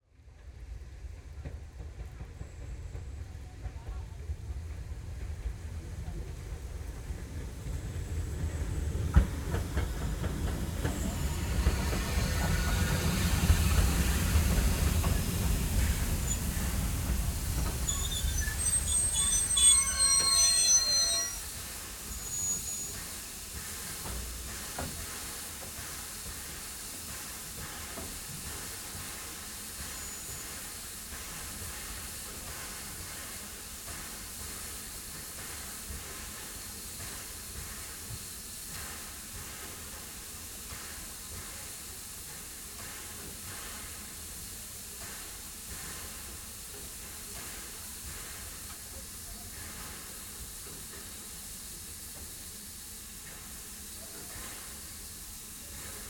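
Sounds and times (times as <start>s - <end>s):
steam train arriving: 0.4s - 56.0s
steam train brakes squealing: 15.0s - 23.2s.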